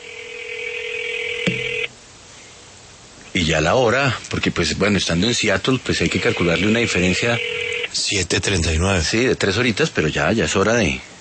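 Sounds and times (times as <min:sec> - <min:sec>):
telephone dialing electronic tone: 0:00.0 - 0:01.9, 0:06.0 - 0:07.9
quiet telephone line noise: 0:00.0 - 0:11.1
speech: 0:03.5 - 0:11.1.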